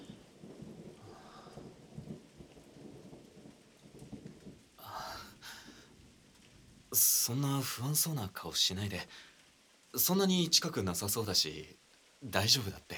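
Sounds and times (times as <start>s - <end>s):
thunder rumbling: 0.0s - 7.3s
steady rain hissing: 0.0s - 12.9s
speech: 7.0s - 9.3s, 10.0s - 12.9s.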